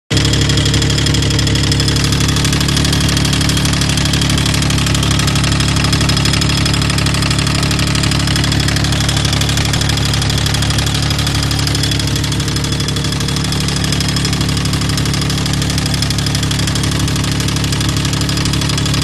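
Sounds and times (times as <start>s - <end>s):
engine making weird noise: 0.1s - 19.0s.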